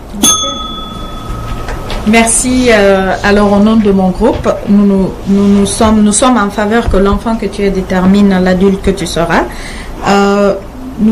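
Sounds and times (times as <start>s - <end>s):
speech: 0.2s - 1.0s, 2.0s - 11.1s
bell strike to start a speaking turn: 0.2s - 2.3s.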